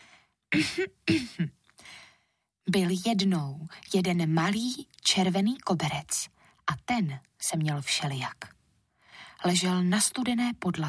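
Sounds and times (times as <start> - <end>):
person clearing throat: 0.5 - 1.6
speech: 0.5 - 2.0, 2.6 - 8.6, 9.4 - 10.8.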